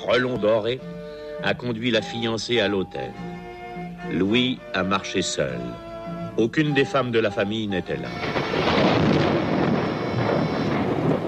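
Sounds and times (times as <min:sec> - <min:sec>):
speech: 0:00.0 - 0:03.3, 0:04.0 - 0:08.8
loud deep rumble of thunder: 0:08.2 - 0:11.2.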